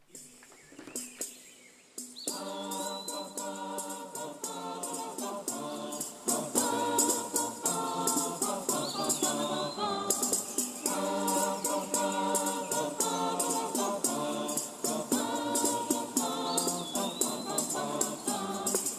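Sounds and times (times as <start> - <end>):
birds chirping and whistling: 0.0 - 4.0, 6.7 - 18.9
steady instrumental piece: 0.0 - 18.9.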